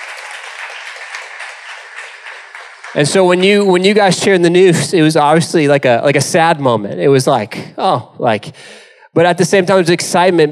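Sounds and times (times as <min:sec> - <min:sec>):
audience applause: 0:00.0 - 0:03.6
speech: 0:02.9 - 0:10.5.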